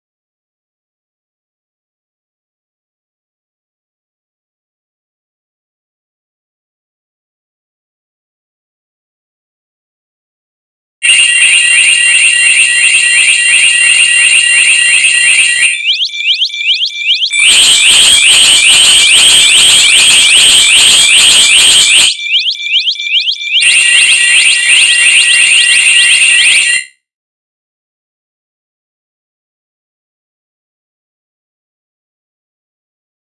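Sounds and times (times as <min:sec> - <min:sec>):
alarm buzzing: 0:11.0 - 0:26.9.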